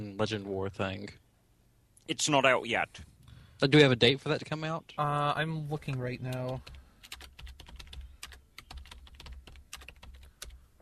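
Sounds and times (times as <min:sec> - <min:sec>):
speech: 0:00.0 - 0:01.2, 0:02.1 - 0:06.8
typing on a computer keyboard: 0:06.2 - 0:10.6.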